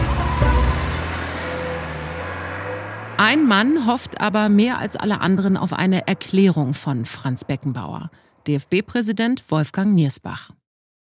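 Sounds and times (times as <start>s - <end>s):
silver car's low engine rumble driving away: 0.0s - 6.8s
speech: 3.2s - 10.6s.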